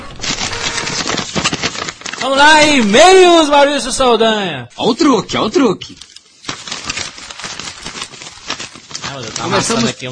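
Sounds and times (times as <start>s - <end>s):
paper lottery ticket being crumpled by hand: 0.0s - 3.4s, 5.8s - 10.1s
speech: 2.2s - 6.1s, 9.2s - 10.1s.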